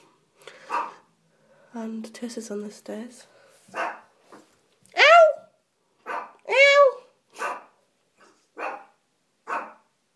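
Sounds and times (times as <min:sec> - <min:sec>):
small dog barking playfully: 0:00.7 - 0:01.0, 0:03.7 - 0:04.1, 0:06.0 - 0:09.9
speech: 0:01.7 - 0:03.4
small dog yipping: 0:03.8 - 0:04.0, 0:06.1 - 0:07.7, 0:08.6 - 0:08.9, 0:09.5 - 0:09.8.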